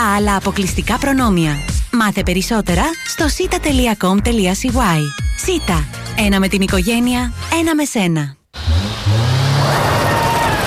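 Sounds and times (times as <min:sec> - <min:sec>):
speech: 0:00.1 - 0:08.4
European-built sports car engine revving hard: 0:08.6 - 0:10.4.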